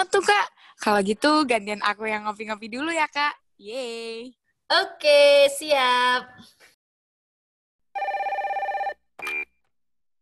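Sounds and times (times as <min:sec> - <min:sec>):
speech: 0:00.0 - 0:06.7
telephone ringing as a call is placed: 0:08.0 - 0:09.5.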